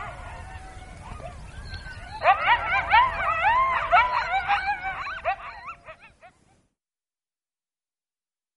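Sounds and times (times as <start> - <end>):
coyote howling and yipping: 0.0 - 6.6.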